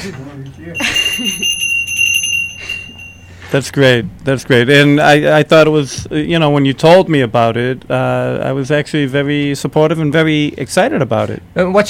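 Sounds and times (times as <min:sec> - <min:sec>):
speech: 0:00.0 - 0:01.9, 0:03.5 - 0:11.8
bell struck and ringing: 0:00.5 - 0:03.4.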